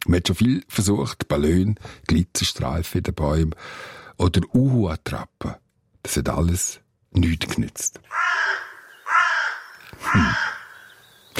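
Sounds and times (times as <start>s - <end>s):
speech: 0.1s - 8.6s, 10.0s - 10.5s
crow cawing: 8.1s - 11.3s.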